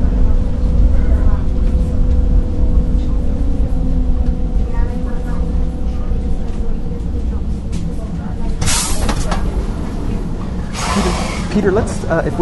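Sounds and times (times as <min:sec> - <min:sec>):
loud steady rumbling of a metro train and station: 0:00.0 - 0:12.4
metro station public address announcement: 0:00.0 - 0:12.4
brief sharp hiss of air: 0:10.7 - 0:11.5
speech: 0:11.6 - 0:12.4.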